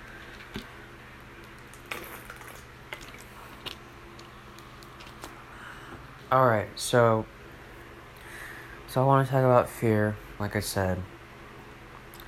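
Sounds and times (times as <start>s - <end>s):
low steady hum: 0.0s - 12.2s
person drinking water with sips and swallows: 1.6s - 4.4s
speech: 6.3s - 7.4s, 9.0s - 11.1s.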